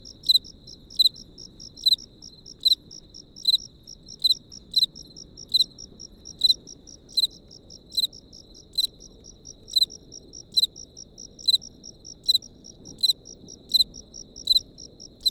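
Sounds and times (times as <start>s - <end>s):
crickets chirping: 0.0s - 15.2s.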